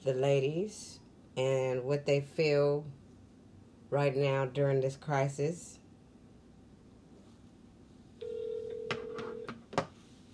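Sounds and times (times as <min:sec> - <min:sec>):
speech: 0:00.0 - 0:03.0, 0:03.9 - 0:05.8
electronic telephone ringback tone: 0:08.2 - 0:09.5.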